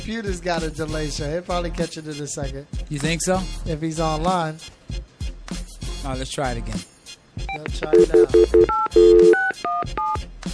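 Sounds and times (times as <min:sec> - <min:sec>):
speech: 0:00.0 - 0:05.1, 0:06.0 - 0:06.9, 0:07.6 - 0:10.3
electronic phone keypad tones as a number is dialed: 0:07.5 - 0:10.2.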